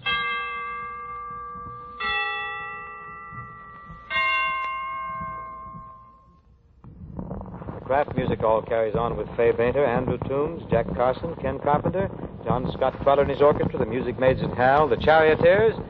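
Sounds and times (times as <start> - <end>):
Christmas bells tolling: 0.0 - 6.6
speech: 7.9 - 15.8.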